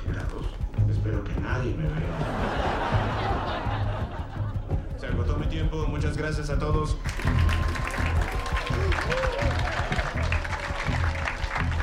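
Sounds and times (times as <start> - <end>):
audience clapping at a comedy club: 0.0 - 11.8
crowd cheering at a comedy club: 0.0 - 11.8
laughter: 1.7 - 5.6, 7.6 - 11.6
speech: 6.0 - 7.6.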